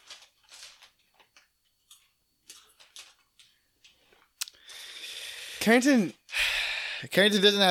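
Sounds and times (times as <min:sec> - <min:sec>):
crinkly potato chip bag rustling: 0:00.0 - 0:04.3
person crunching potato chips: 0:00.0 - 0:04.7
speech: 0:05.6 - 0:06.2, 0:07.0 - 0:07.7.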